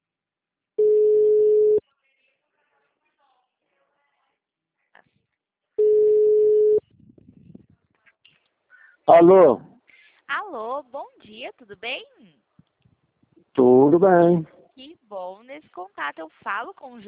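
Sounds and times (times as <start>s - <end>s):
telephone line tone during an outgoing call: 0.8s - 1.8s, 5.8s - 6.8s
speech: 9.2s - 9.7s, 10.8s - 12.4s, 13.6s - 17.0s.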